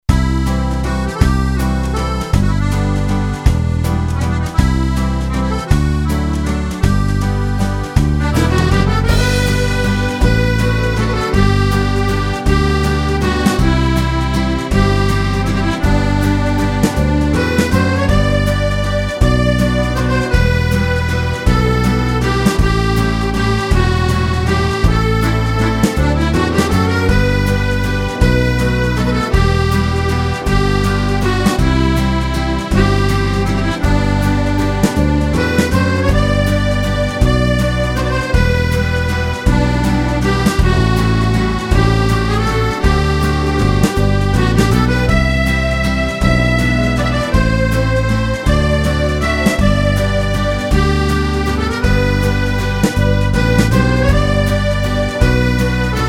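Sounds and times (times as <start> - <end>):
accordion playing an Irish waltz: 0.0 - 56.0.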